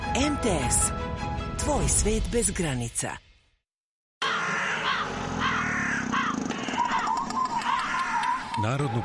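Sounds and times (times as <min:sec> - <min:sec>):
speech: 0:00.2 - 0:01.1, 0:01.6 - 0:03.2, 0:08.6 - 0:09.0
crows cawing: 0:04.2 - 0:09.0.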